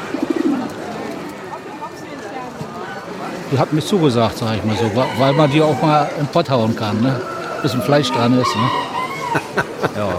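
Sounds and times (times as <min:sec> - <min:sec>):
pigeons cooing: 0:00.0 - 0:00.9, 0:06.9 - 0:09.5
murmur: 0:00.0 - 0:10.1
speech: 0:03.5 - 0:10.1
laughter: 0:09.0 - 0:10.1.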